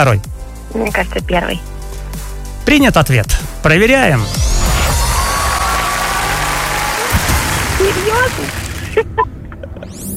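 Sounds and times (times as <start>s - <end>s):
speech: 0.0s - 1.7s, 2.6s - 4.5s, 7.8s - 9.3s
crowd cheering: 5.0s - 8.9s
loud dense applause: 5.2s - 9.0s.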